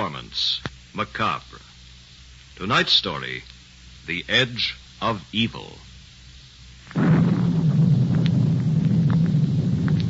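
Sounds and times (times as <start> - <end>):
speech: 0.1 - 1.6, 2.6 - 5.9
faint crackles: 1.5 - 5.0, 5.8 - 10.0
thunder rumbling in a thunderstorm: 6.9 - 10.0.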